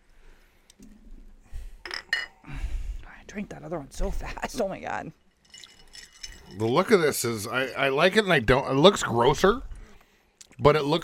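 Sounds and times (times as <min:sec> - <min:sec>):
glasses clinking in a toast: 0:01.8 - 0:02.5, 0:05.2 - 0:07.4
speech: 0:03.3 - 0:05.6, 0:06.5 - 0:09.7, 0:10.6 - 0:11.0.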